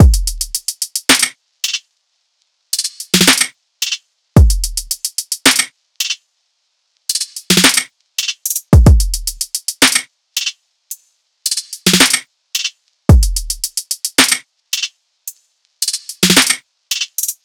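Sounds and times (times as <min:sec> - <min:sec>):
full drum loop at 110: 0:00.0 - 0:01.8, 0:02.8 - 0:06.2, 0:07.1 - 0:10.5, 0:11.5 - 0:14.9, 0:15.8 - 0:17.4.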